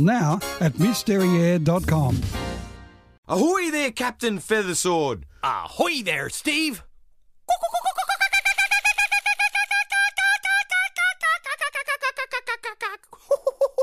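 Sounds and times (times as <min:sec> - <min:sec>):
speech: 0:00.0 - 0:02.4, 0:03.3 - 0:06.9
human voice imitating the laughing call of the Australian kookaburra: 0:07.5 - 0:13.8.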